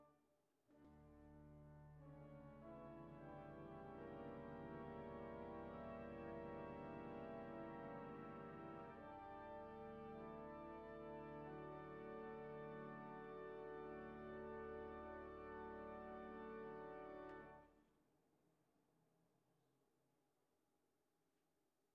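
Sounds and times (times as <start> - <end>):
earth organ: 0.8 - 17.6.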